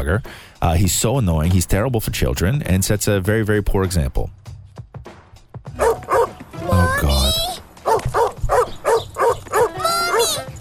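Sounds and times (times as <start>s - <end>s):
speech: 0.0s - 4.5s
dog barking: 5.8s - 6.4s, 7.8s - 10.4s.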